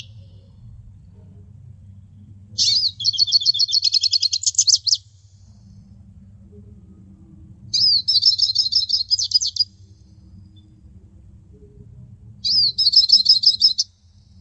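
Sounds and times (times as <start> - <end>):
faint low hum: 0.0 - 14.3
hooded siskin twittering: 2.6 - 5.0, 7.7 - 9.7, 12.4 - 13.9.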